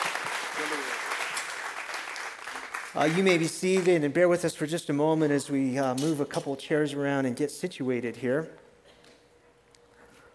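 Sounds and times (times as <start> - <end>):
congregation applauding at a church service: 0.0 - 4.1
speech: 3.0 - 8.6.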